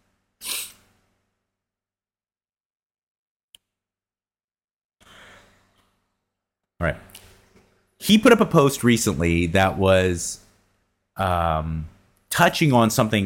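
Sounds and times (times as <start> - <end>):
stifled breathy sneeze: 0.4 - 0.8
speech: 6.8 - 7.1, 8.0 - 10.4, 11.2 - 13.2.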